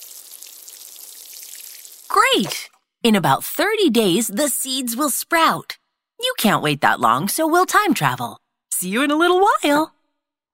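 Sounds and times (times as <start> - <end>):
water splashing onto soil covering freshly planted seeds: 0.0 - 2.7
speech: 2.2 - 10.0.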